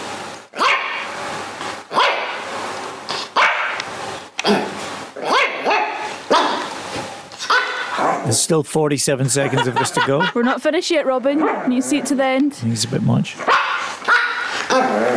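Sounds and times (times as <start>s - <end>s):
several dogs barking with yips and woofs: 0.6s - 1.1s, 1.9s - 2.5s, 3.3s - 3.8s, 4.6s - 6.8s, 7.4s - 8.3s, 11.4s - 12.1s, 13.4s - 15.1s
laughter: 8.3s - 11.1s
speech: 8.4s - 13.6s, 14.8s - 15.1s.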